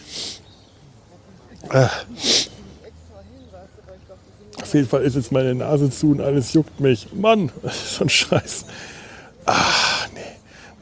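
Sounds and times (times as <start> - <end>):
hissy exhale: 0.0 - 0.4, 1.9 - 2.7
speech: 1.6 - 2.4, 4.7 - 8.9, 9.5 - 9.8
loud sneeze triggered by looking into the light: 1.7 - 2.7.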